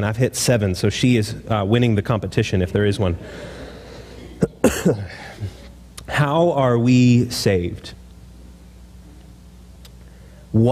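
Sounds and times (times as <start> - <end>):
speech: 0.0 - 3.7, 4.4 - 8.0
person with a head cold coughing: 4.1 - 5.7.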